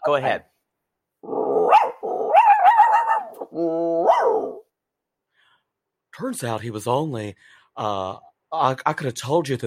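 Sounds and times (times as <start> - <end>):
speech: 0.1 - 0.5, 6.2 - 9.6
person imitating dog barking and whining: 1.2 - 4.7.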